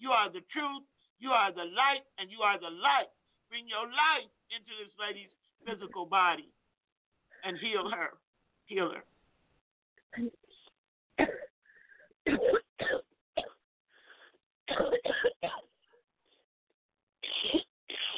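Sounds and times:
speech: 0:00.2 - 0:06.6, 0:07.4 - 0:09.1, 0:10.1 - 0:10.4, 0:11.2 - 0:11.5
harsh broadband coughs: 0:11.2 - 0:11.6, 0:12.3 - 0:13.6, 0:14.7 - 0:15.8, 0:17.2 - 0:18.1.

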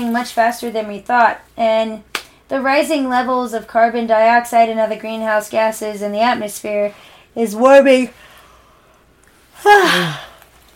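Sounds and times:
speech: 0:00.0 - 0:08.3, 0:09.6 - 0:10.3
person yawning: 0:09.6 - 0:10.4.

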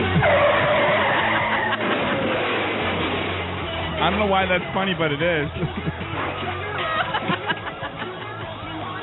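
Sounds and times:
car crashing sound effect: 0:00.1 - 0:04.8, 0:05.7 - 0:07.5
tires skidding sound effect: 0:00.1 - 0:04.8
laughter: 0:00.9 - 0:02.4, 0:05.3 - 0:09.0
speech: 0:04.1 - 0:06.0.

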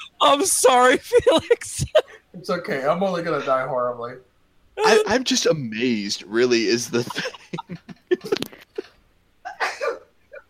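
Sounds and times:
speech: 0:00.2 - 0:08.4
person sneezing: 0:04.8 - 0:05.2
laughter: 0:06.8 - 0:08.9.

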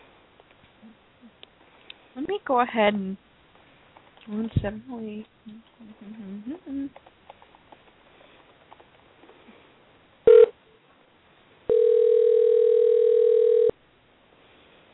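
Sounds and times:
speech: 0:02.2 - 0:03.3, 0:04.3 - 0:07.1
loud steady phone tone: 0:10.3 - 0:10.5, 0:11.7 - 0:13.8
telephone beep: 0:11.7 - 0:13.7.

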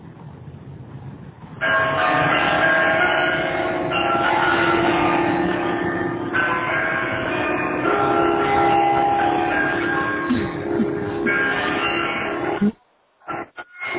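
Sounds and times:
church bells at a university ringing a pop tune: 0:01.6 - 0:12.6.

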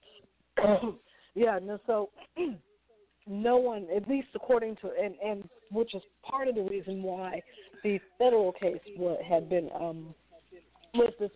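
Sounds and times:
person clearing throat: 0:00.6 - 0:01.0, 0:02.2 - 0:02.6
person coughing: 0:00.6 - 0:01.0, 0:02.2 - 0:02.6
speech: 0:00.6 - 0:10.2, 0:10.9 - 0:11.3.

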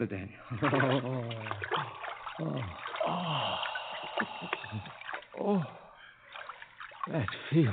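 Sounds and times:
speech: 0:00.0 - 0:05.7, 0:07.1 - 0:07.7
two people's feet splashing and sloshing into a basin of water: 0:00.4 - 0:05.7, 0:06.3 - 0:07.7
low voiced grunts and sighs: 0:00.5 - 0:06.0.

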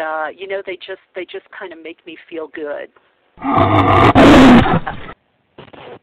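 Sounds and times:
speech: 0:00.3 - 0:05.2
lioness roaring: 0:03.4 - 0:05.2.

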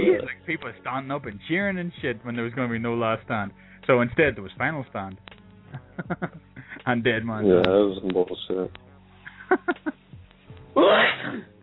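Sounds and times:
speech: 0:00.2 - 0:08.8, 0:10.8 - 0:11.5
breathing: 0:03.6 - 0:03.9, 0:06.6 - 0:06.9
person sneezing from allergies: 0:10.8 - 0:11.5.

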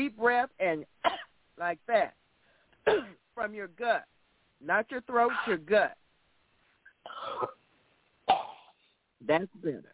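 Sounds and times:
speech: 0:00.0 - 0:01.0, 0:01.6 - 0:02.2, 0:02.8 - 0:06.0, 0:07.0 - 0:07.6, 0:09.2 - 0:09.9
person coughing: 0:02.8 - 0:03.2, 0:07.0 - 0:07.6, 0:08.3 - 0:08.8.

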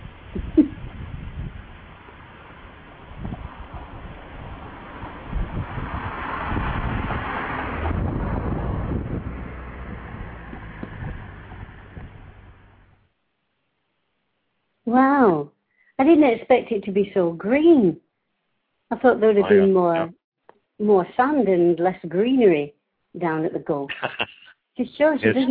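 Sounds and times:
wind buffeting microphone with low rumbling gusts: 0:00.0 - 0:12.9
faint outdoor ambience: 0:00.0 - 0:25.5
speech: 0:00.4 - 0:00.8, 0:16.1 - 0:18.0, 0:18.9 - 0:20.2, 0:20.8 - 0:25.5
laughter: 0:19.4 - 0:20.1, 0:23.9 - 0:24.5, 0:25.2 - 0:25.5.

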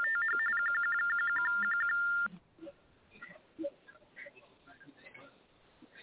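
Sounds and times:
phone ringing with rapid high electronic beeps: 0:00.0 - 0:02.3
faint noise: 0:00.0 - 0:06.0.

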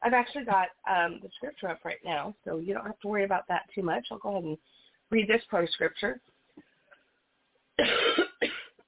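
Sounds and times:
speech: 0:00.0 - 0:06.3, 0:07.8 - 0:08.2
person recovering from an illness coughing: 0:07.8 - 0:08.8.

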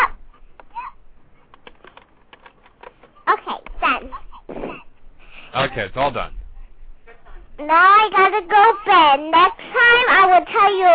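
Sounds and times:
typing on a laptop keyboard: 0:01.5 - 0:03.1
speech: 0:05.6 - 0:06.4, 0:07.6 - 0:10.9.

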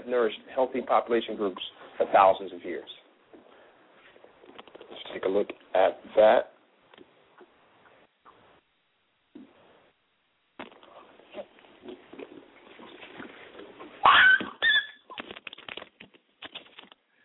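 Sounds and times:
speech: 0:00.1 - 0:03.0, 0:05.2 - 0:06.5
young dog yelping or barking: 0:14.0 - 0:15.2.

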